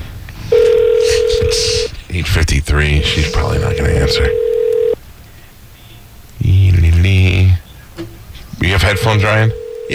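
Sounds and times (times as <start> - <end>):
faint noise: 0.0 - 9.9
telephone dial tone: 0.5 - 1.6, 3.0 - 5.0, 8.9 - 9.9
speech: 2.2 - 4.5, 8.9 - 9.9.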